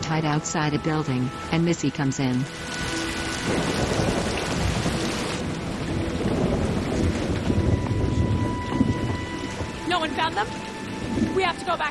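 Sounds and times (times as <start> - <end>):
heavy rain pattering on surfaces during a thunderstorm: 0.0 - 11.8
speech: 0.1 - 4.1, 10.2 - 10.7, 11.4 - 11.8
low thunder rumbling: 2.6 - 11.8.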